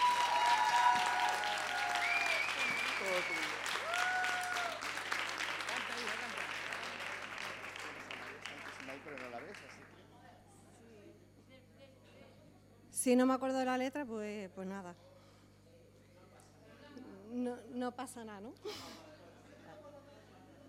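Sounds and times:
audience applause: 0.0s - 10.0s
speech: 13.1s - 15.1s, 17.8s - 19.0s.

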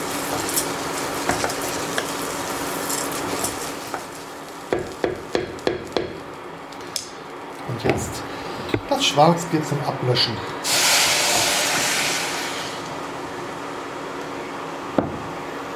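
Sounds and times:
scraping stir sounds in a pan: 0.0s - 4.4s, 10.7s - 12.9s
rice sautéing in oil with spring onions and onions: 0.0s - 8.6s, 10.6s - 15.7s
speech: 9.0s - 10.6s.

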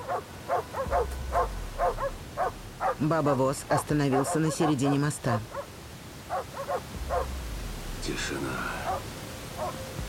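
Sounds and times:
sled team dogs barking: 0.0s - 3.1s, 3.7s - 5.7s, 6.3s - 7.3s, 8.8s - 9.9s
low rumble: 0.8s - 4.1s, 6.9s - 10.0s
speech: 3.0s - 5.6s, 8.1s - 9.1s.

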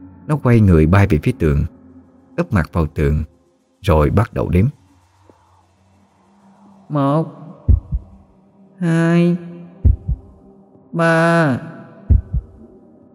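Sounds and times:
droning voice-like tonal swell: 0.0s - 13.1s
speech: 0.3s - 1.8s, 2.4s - 4.8s, 6.9s - 7.4s, 8.8s - 9.5s, 10.9s - 11.7s
pounding heartbeat effect: 7.7s - 8.2s, 9.8s - 10.4s, 12.1s - 12.6s.

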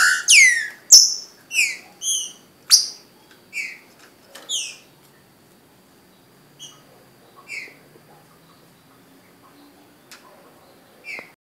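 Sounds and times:
green-winged saltator whistling song in Brazil: 0.0s - 3.0s.

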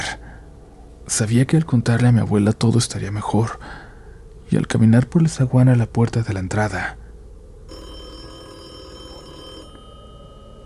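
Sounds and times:
faint hiss: 0.0s - 10.6s
speech: 1.1s - 3.8s, 4.5s - 7.0s
house telephone ringing: 7.7s - 10.2s.

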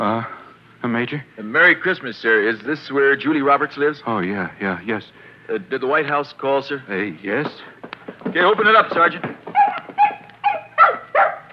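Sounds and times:
speech: 0.0s - 9.4s
puppy giving high-pitched yelping barks: 9.5s - 11.5s.

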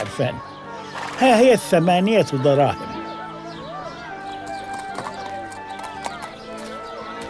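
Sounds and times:
speech: 0.0s - 0.5s, 1.2s - 2.8s
Arabian horse hooves clip-clopping at a market: 4.4s - 7.2s.

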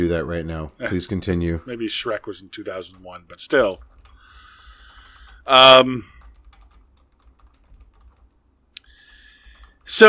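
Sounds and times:
speech: 0.0s - 3.9s, 5.5s - 6.1s, 9.9s - 10.0s
typing on a computer keyboard to enter a search query: 2.7s - 8.4s, 9.4s - 10.0s.

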